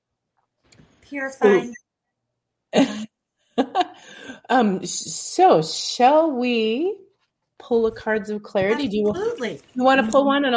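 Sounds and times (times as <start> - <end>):
speech: 1.1 - 1.8, 4.5 - 7.0, 7.6 - 10.5
person coughing: 2.8 - 3.1.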